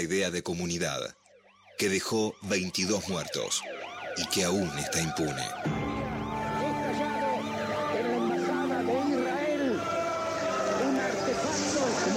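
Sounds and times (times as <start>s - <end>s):
speech: 0.0s - 1.2s, 1.8s - 5.9s
ambulance sirens wailing at the scene of a terrorist bombing: 1.2s - 12.1s
street commotion at a bombing scene: 1.2s - 12.1s
indistinct voices at a bombing scene: 4.2s - 12.1s.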